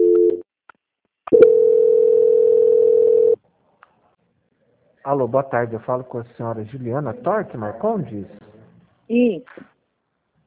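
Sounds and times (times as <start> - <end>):
telephone line tone during a call transfer: 0.0 - 0.4, 1.3 - 3.4
speech: 5.1 - 8.4, 9.1 - 9.7.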